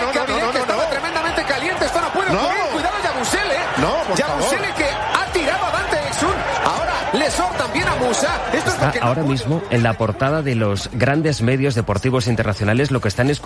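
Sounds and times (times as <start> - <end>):
many overlapping voices shouting in a basketball brawl: 0.0 - 9.5
basketball arena crowd noise: 0.0 - 13.4
speech: 8.0 - 13.4.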